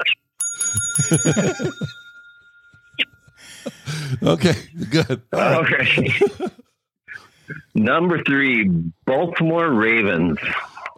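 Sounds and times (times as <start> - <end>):
speech: 0.0 - 2.0, 4.1 - 6.6, 7.5 - 10.9
bright bicycle-style bell ringing: 0.4 - 3.7
laughter: 1.0 - 2.0, 3.0 - 6.6.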